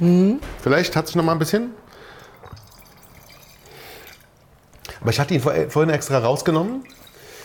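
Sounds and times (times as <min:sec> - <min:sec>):
speech: 0:00.0 - 0:01.9, 0:05.0 - 0:07.0
liquid poured from a bottle into a glass: 0:02.0 - 0:04.7, 0:06.4 - 0:07.4.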